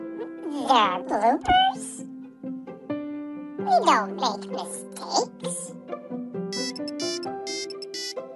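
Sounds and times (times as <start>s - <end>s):
speech: 0.7s - 1.9s, 3.8s - 5.7s
mobile phone ringtone electronic melody: 6.5s - 8.2s.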